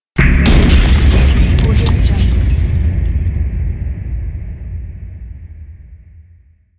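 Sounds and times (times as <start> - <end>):
gunshot sound effect: 0.2 - 5.6.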